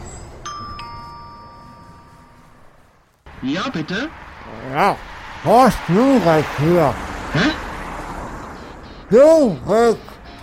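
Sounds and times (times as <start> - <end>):
doorbell chime ringing ding-dong: 0.4 - 2.9
speech: 3.4 - 7.6, 9.1 - 10.1.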